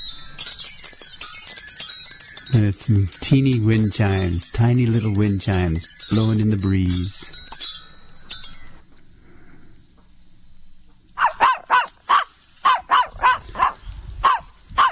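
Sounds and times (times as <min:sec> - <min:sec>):
speech: 0:02.5 - 0:07.4
small dog barking and growling: 0:11.2 - 0:14.9.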